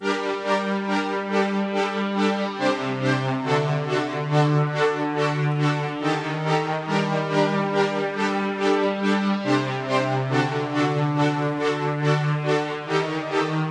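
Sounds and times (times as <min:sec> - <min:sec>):
melody loop in G minor: 0:00.0 - 0:13.6.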